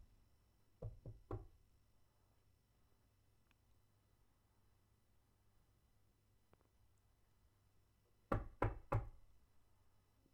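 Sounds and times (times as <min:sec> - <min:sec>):
knocking on a door: 0:00.8 - 0:01.5, 0:08.3 - 0:09.2.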